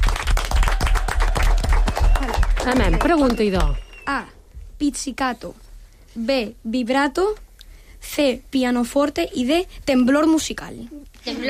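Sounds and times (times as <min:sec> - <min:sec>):
group of people clapping in applause: 0:00.0 - 0:04.0
speech: 0:02.6 - 0:07.4, 0:08.0 - 0:11.4.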